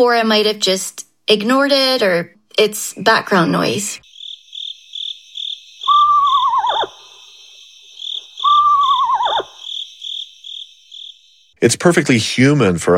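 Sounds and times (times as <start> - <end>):
speech: 0.0 - 4.1, 11.6 - 12.9
insects chirping: 3.2 - 11.6
screech owl whinny: 5.8 - 9.9.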